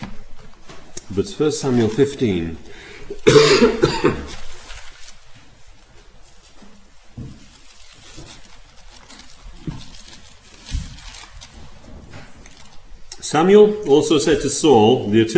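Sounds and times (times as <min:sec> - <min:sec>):
soft rustles: 0:00.0 - 0:02.6, 0:04.1 - 0:14.7
speech: 0:01.1 - 0:04.4, 0:13.3 - 0:15.3
person coughing: 0:03.1 - 0:04.4
throat clearing: 0:03.1 - 0:04.4.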